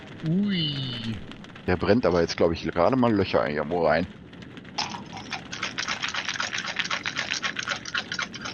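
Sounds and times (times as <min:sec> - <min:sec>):
speech: 0:00.2 - 0:04.2
many small dice rolling and knocking together: 0:04.8 - 0:08.5.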